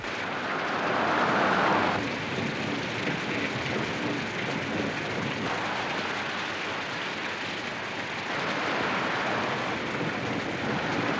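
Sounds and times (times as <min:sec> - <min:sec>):
torrential rain: 0:00.0 - 0:11.1.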